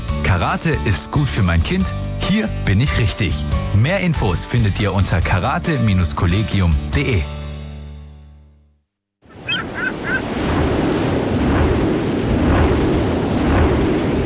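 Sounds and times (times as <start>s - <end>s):
speech: 0.3s - 7.4s
sea waves at an offshore wind farm in the Baltic Sea: 9.3s - 14.2s
wind roaring at an offshore wind farm in the Baltic Sea: 9.3s - 14.2s.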